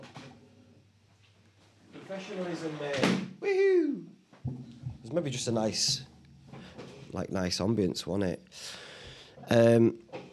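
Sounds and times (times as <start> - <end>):
speech: 2.1 - 4.1, 5.1 - 6.1, 7.1 - 8.8, 9.5 - 10.0
door swinging shut with a muffled thud: 2.9 - 3.4.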